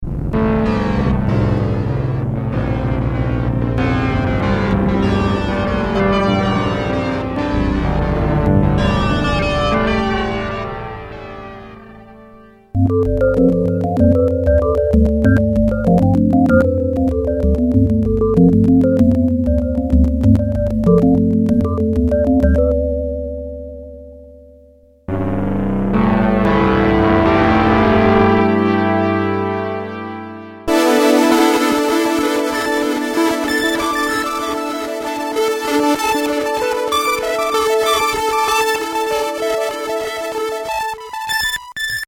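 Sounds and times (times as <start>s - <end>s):
Kawai K1 comp analog patch: 0.0s - 24.1s, 25.1s - 42.0s.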